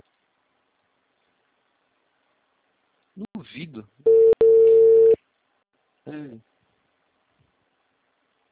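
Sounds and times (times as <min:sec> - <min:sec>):
speech: 0:03.2 - 0:04.1
telephone ringback tone from an unanswered call: 0:04.1 - 0:05.2.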